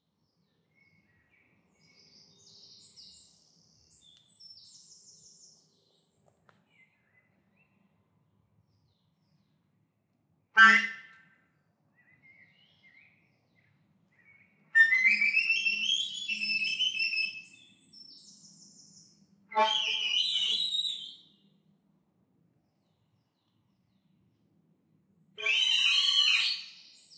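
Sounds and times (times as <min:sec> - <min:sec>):
forest at dawn: 0:00.1 - 0:09.7, 0:11.9 - 0:21.7, 0:25.0 - 0:27.1.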